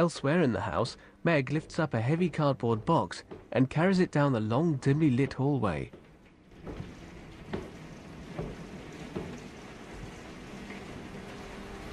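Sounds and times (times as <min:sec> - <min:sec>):
speech: 0:00.0 - 0:06.0
heavy raindrop thuds on a large domed skylight: 0:06.0 - 0:10.8
rain pounding on a large domed skylight: 0:06.2 - 0:11.9.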